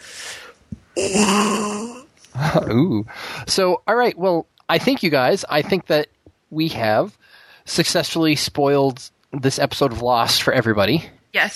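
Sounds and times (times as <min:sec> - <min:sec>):
speech: 0:01.0 - 0:01.8, 0:02.5 - 0:11.5
person imitating a dying elephant with trumpet-like wail: 0:01.0 - 0:02.1.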